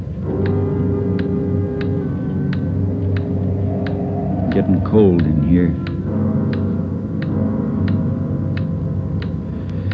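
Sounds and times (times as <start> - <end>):
low rumbling wind on a windy day: 0.8 - 7.2
loud clock ticking: 3.2 - 9.9
speech: 4.6 - 5.9.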